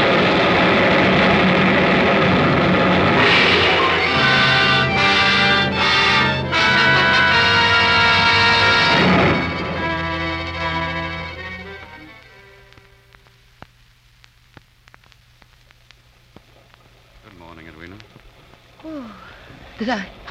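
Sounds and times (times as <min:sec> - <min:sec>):
morning rain in India hissing: 0:00.0 - 0:20.2.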